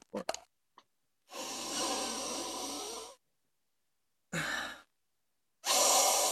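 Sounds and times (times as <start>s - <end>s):
person sniffing to smell cannabis: 1.3s - 3.2s, 5.6s - 6.2s.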